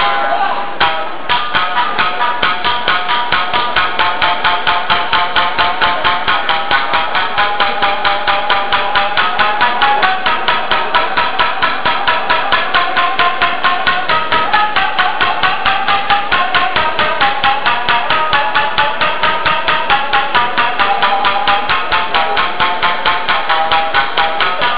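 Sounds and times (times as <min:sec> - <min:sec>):
shamisen playing at a banquet: 0:00.0 - 0:24.7.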